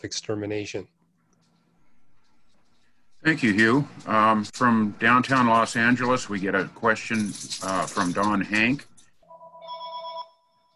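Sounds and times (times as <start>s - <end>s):
speech: 0.0s - 1.0s, 3.2s - 8.9s
telephone ringing with a bright electronic tone: 9.2s - 10.7s.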